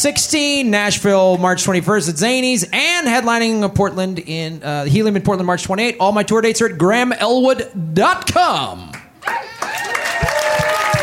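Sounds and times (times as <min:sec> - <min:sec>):
speech: 0:00.0 - 0:09.4
applause: 0:08.9 - 0:11.0
crowd cheering with whoops and shouts: 0:09.2 - 0:11.0.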